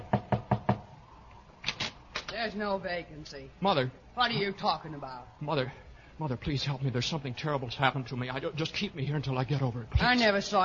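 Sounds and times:
firm knocks on a door: 0.0 - 0.9
speech: 2.4 - 10.6.

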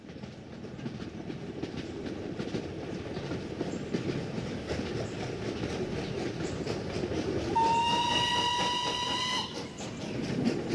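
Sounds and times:
rhythmic clacking of train wheels: 0.0 - 10.7
train rolling along a railroad on the north side of the New River: 0.0 - 10.7
train horn: 7.5 - 9.8.

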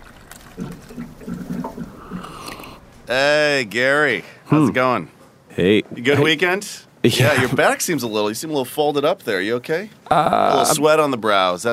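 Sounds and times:
office water cooler gurgling: 0.0 - 3.1
speech: 0.6 - 1.4, 3.1 - 11.7.

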